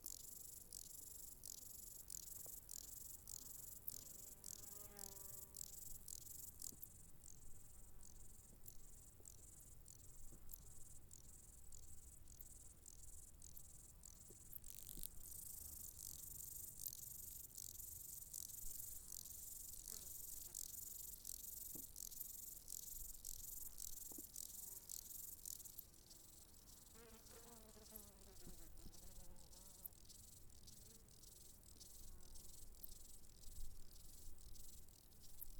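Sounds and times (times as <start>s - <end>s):
grasshoppers chirping: 0.0s - 28.4s, 29.0s - 35.4s.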